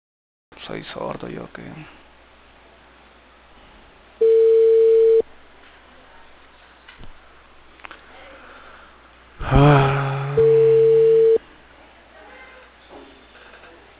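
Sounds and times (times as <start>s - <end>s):
speech: 0.7s - 2.1s
faint phone line noise: 4.2s - 5.2s, 10.4s - 11.4s
long steady mobile phone tones: 4.2s - 5.2s, 10.0s - 11.4s.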